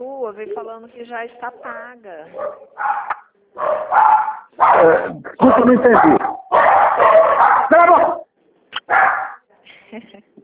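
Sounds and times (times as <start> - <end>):
speech: 0.3 - 6.3
dogs barking: 1.4 - 9.4.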